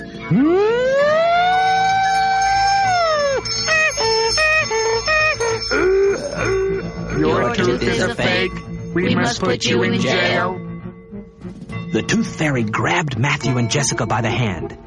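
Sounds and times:
loud siren wailing and pulsing: 0:00.2 - 0:10.6
speech: 0:00.3 - 0:00.7, 0:08.0 - 0:10.6, 0:11.9 - 0:14.8.

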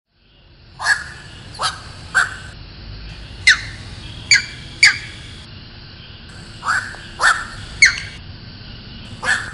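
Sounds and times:
high whine: 0:00.7 - 0:09.5
grey heron uttering rasping squawking calls: 0:00.8 - 0:02.6, 0:03.4 - 0:05.4, 0:06.3 - 0:08.2, 0:09.2 - 0:09.5.

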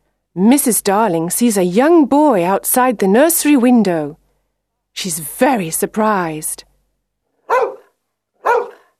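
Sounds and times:
speech: 0:00.4 - 0:04.2, 0:05.0 - 0:06.7
dog barking in a children's nursery: 0:07.4 - 0:08.9.

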